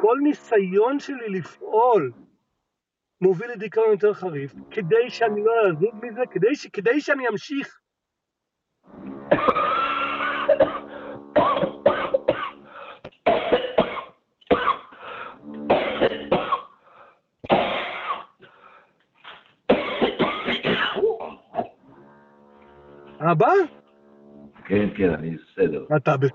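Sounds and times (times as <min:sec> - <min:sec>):
speech: 0:00.0 - 0:02.2, 0:03.2 - 0:07.8, 0:08.9 - 0:09.8, 0:23.2 - 0:23.8, 0:24.7 - 0:26.3
man coughing hard: 0:09.3 - 0:12.6, 0:13.3 - 0:14.9, 0:15.7 - 0:16.7, 0:17.4 - 0:18.4, 0:19.7 - 0:21.7.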